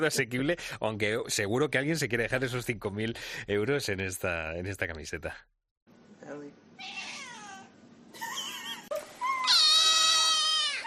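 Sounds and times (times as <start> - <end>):
speech: 0.0 - 5.6
cats meowing: 6.8 - 7.7, 9.3 - 10.8.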